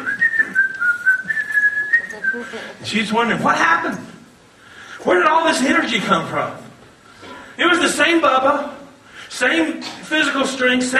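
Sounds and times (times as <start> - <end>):
man whistling a melodic tune in a garage: 0.0 - 2.5
speech: 2.3 - 4.1, 5.0 - 6.6, 7.6 - 10.9.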